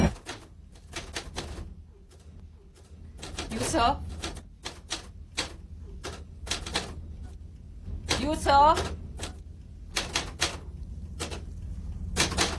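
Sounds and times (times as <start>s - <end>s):
typewriter keys clacking: 0.2s - 7.0s, 8.1s - 10.6s, 12.2s - 12.5s.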